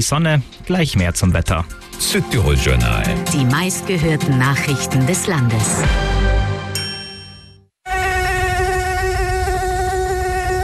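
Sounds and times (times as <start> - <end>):
speech: 0.0 - 6.3
ringing chime: 6.8 - 7.6
mosquito buzzing: 7.8 - 10.6.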